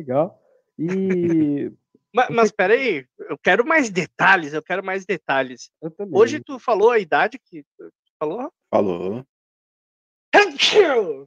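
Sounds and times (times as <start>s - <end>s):
speech: 0.0s - 9.3s, 10.3s - 11.2s
laughter: 0.8s - 1.6s
person sneezing after taking snuff: 10.4s - 11.0s.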